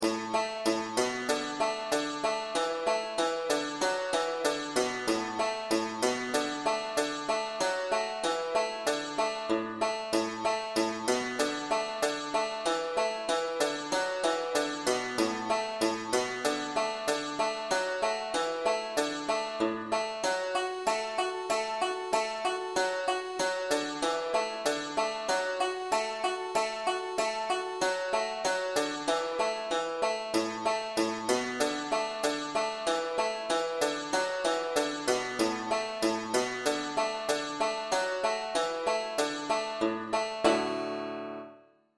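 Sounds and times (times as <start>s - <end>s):
Irish banjo melody in D: 0.0s - 41.7s.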